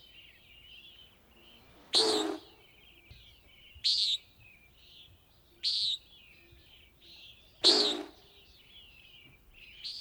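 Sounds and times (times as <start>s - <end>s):
common nighthawk calling with short buzzy nasal notes: 1.0s - 2.9s, 7.6s - 8.5s.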